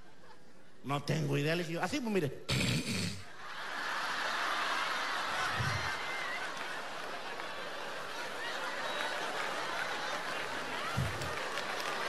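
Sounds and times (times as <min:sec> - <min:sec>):
speech: 0:00.8 - 0:02.8
laughter: 0:03.4 - 0:11.6
crowd applauding: 0:03.5 - 0:12.0.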